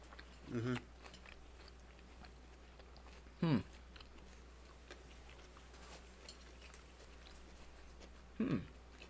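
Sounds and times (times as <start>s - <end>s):
chewing crunchy food: 0.0s - 9.0s
low steady hum: 0.0s - 9.0s.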